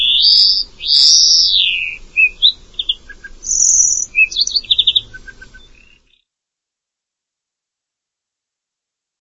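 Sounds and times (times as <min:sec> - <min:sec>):
bird singing: 0:00.0 - 0:06.3.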